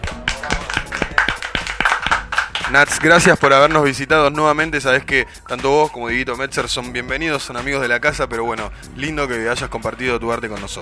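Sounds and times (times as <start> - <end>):
studio audience applause on a radio program after a performance: 0.0 - 3.3
speech: 2.7 - 10.8.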